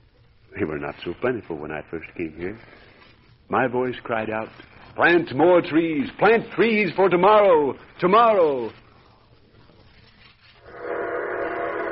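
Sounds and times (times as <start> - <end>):
speech: 0.5 - 2.9, 3.5 - 8.8
train whistle blowing with a rumbling hiss: 10.6 - 11.9.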